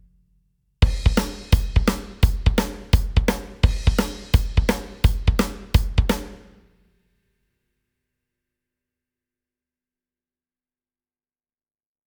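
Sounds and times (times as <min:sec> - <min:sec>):
drum rhythm with metric modulation: 0:00.8 - 0:06.6.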